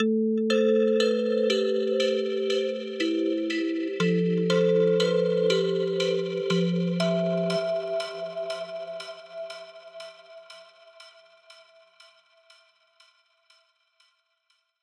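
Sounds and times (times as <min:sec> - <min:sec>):
melodic music in A minor: 0:00.0 - 0:10.8.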